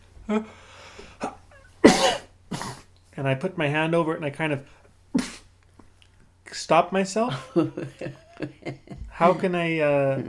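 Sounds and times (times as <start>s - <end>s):
speech: 0.3s - 0.7s, 3.2s - 5.3s, 6.7s - 10.2s
person coughing: 1.2s - 2.9s.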